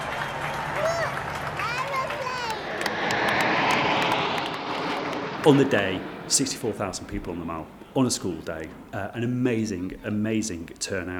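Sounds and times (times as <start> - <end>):
large outdoor crowd roaring and cheering outside Buckingham Palace: 0.0 - 5.5
speech: 5.4 - 11.1.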